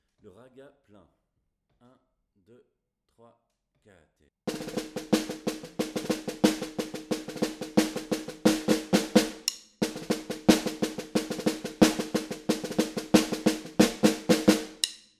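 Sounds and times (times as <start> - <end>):
ragga full snare drum in batucada style: 4.5 - 15.0.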